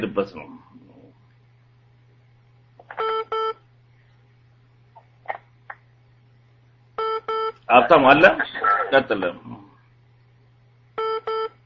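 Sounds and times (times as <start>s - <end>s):
speech: 0.0s - 0.8s, 7.7s - 9.6s
electronic telephone beeps: 11.0s - 11.6s.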